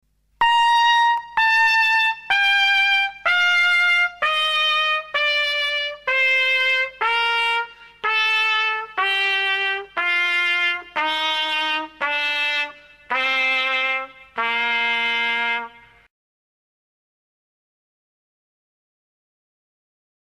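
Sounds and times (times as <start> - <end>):
brass trumpet playing from high to low: 0.4 - 16.1.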